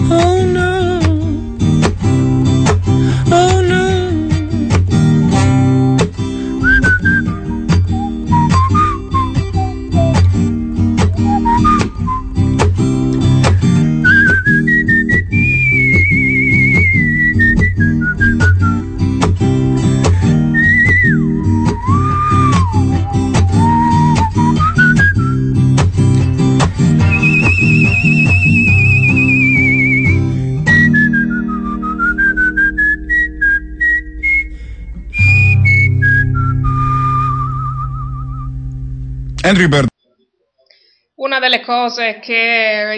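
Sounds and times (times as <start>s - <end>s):
steady rhythmic instrumental backing: 0.0s - 37.4s
person whistling a melody: 6.4s - 12.8s, 13.4s - 18.9s, 20.1s - 25.7s, 26.9s - 38.6s
speech: 39.6s - 39.9s, 41.4s - 42.9s.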